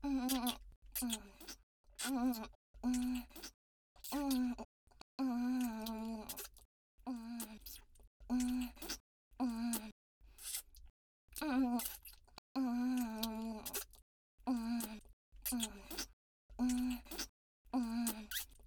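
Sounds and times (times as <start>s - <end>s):
oral sex sounds: 0.0s - 7.6s, 11.4s - 18.5s.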